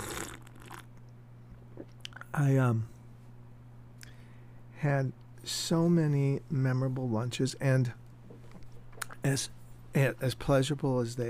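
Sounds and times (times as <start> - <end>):
slurping sip of hot tea: 0.0 - 0.8
faint low hum: 0.0 - 11.2
speech: 2.3 - 2.9, 4.8 - 8.0, 9.2 - 11.2.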